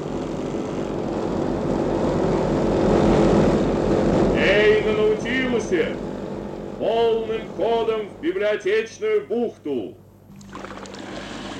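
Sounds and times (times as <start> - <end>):
propeller airplane engine roaring during takeoff: 0.0 - 8.5
speech: 6.8 - 10.0.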